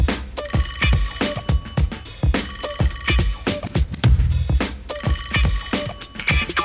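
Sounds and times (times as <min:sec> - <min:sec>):
music with steady thumping beat and busy musical backing: 0:00.0 - 0:06.6
car phone ringing: 0:00.4 - 0:03.8, 0:04.9 - 0:06.6.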